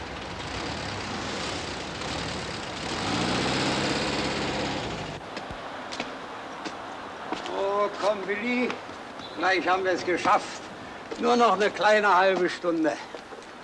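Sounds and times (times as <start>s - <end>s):
vehicle engine running as it drives on: 0.0s - 5.2s
speech: 8.1s - 10.6s, 11.2s - 13.1s.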